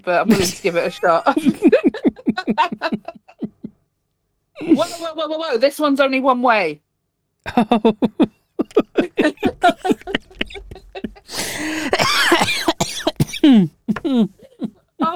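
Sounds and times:
speech: 0.0 - 3.2, 4.6 - 6.8, 7.4 - 10.6, 13.4 - 14.4
laughter: 1.0 - 3.7, 7.5 - 11.9
person coughing with harsh coughs and wheezing: 11.3 - 13.7.

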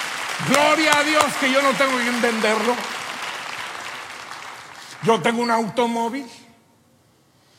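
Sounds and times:
audience applauding: 0.0 - 5.9
speech: 0.4 - 3.0, 5.0 - 6.4.

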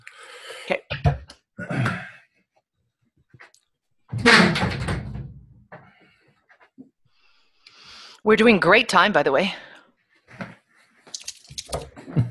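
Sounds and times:
speech: 0.7 - 0.9, 8.3 - 9.7
door being closed: 4.1 - 5.3
door thud and rattle as it shuts: 4.2 - 5.4.

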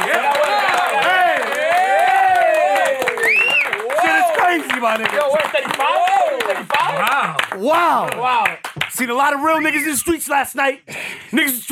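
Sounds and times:
studio audience whooping and hollering: 0.0 - 4.7, 5.3 - 8.0
crowd noise in a studio: 0.0 - 8.4
studio audience clapping: 0.0 - 9.6
speech: 4.8 - 11.7.

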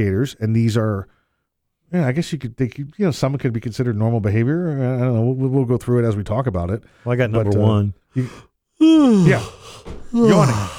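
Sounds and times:
speech: 0.0 - 1.2, 1.9 - 10.7
person yawning: 8.8 - 10.7.

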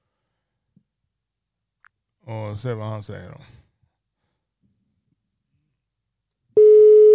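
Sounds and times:
speech: 2.3 - 3.6
steady electronic telephone line tone during dialing: 6.6 - 7.1.

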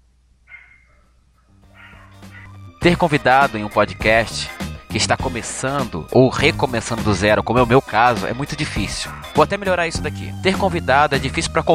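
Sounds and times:
dogs barking: 0.5 - 2.6, 8.8 - 9.5
speech: 2.8 - 11.7.

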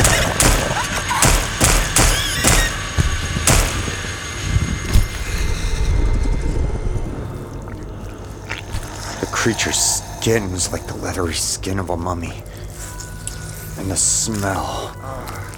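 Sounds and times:
pistol shots fired in rapid succession: 0.0 - 4.1
noisy low rumble: 0.0 - 15.5
speech: 9.5 - 12.5, 13.8 - 15.2.

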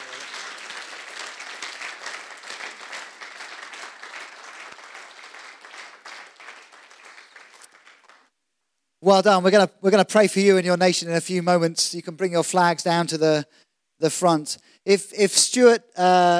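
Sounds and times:
crowd applauding: 0.0 - 8.3
speech: 9.0 - 16.3.

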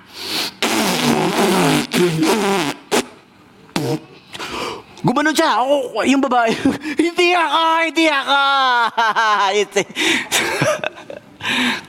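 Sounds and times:
voice imitating a fart with a raspberry: 0.5 - 4.2
speech: 2.0 - 2.8, 5.0 - 10.9.

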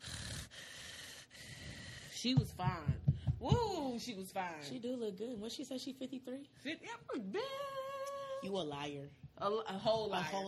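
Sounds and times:
person doing exaggerated heavy breathing: 0.0 - 2.3
speech: 2.2 - 7.8, 8.4 - 10.4.

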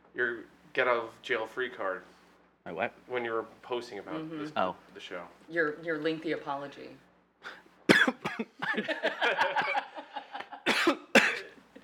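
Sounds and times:
speech: 0.2 - 7.6, 8.4 - 9.8
harsh coughs into the microphone: 7.9 - 8.8, 10.6 - 11.6
laughter: 8.5 - 10.7.

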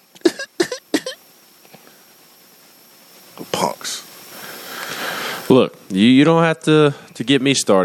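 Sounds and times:
voice imitating a young kid coughing after a pull on a cigar: 0.2 - 1.2
speech: 5.5 - 7.8.

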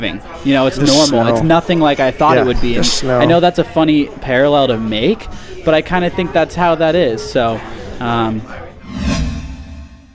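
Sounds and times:
speech: 0.0 - 8.6
swoosh transition sound effect: 8.8 - 10.1.

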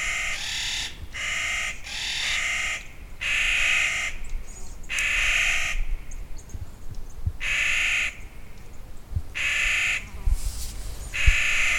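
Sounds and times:
Clark's Nutcracker giving loud drawn-out grating calls: 0.0 - 6.2, 7.4 - 8.6, 9.4 - 10.2, 11.1 - 11.7.

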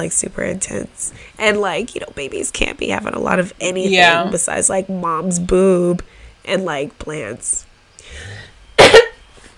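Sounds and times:
speech: 0.0 - 8.4
person clearing throat: 8.8 - 9.2.

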